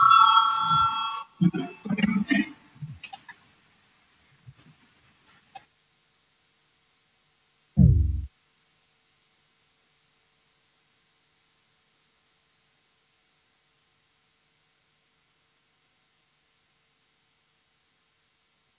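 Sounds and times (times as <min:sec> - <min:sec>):
sustained electronic bell tone calling deputies to a vote in a legislative chamber: 0:00.0 - 0:01.2
short low thump: 0:07.8 - 0:08.3.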